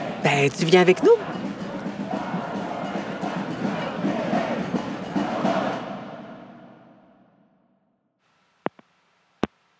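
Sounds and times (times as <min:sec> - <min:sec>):
dense crowd of protest marchers roaring and chanting: 0:00.0 - 0:07.2
speech: 0:00.2 - 0:01.3
sharp clicks: 0:08.6 - 0:09.6.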